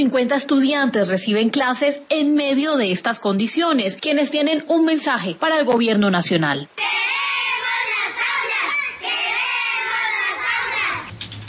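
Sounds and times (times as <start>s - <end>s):
speech: 0.0s - 7.2s
large group of children shouting in unison: 6.8s - 11.1s.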